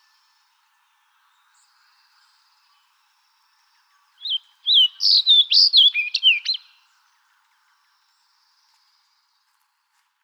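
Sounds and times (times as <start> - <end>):
Fox Sparrow singing: 4.2 - 6.7.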